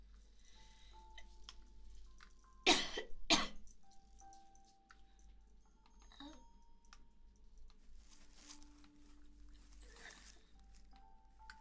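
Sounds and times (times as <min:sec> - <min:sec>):
faint steady hum: 0:00.0 - 0:11.5
person coughing harshly: 0:02.7 - 0:03.6.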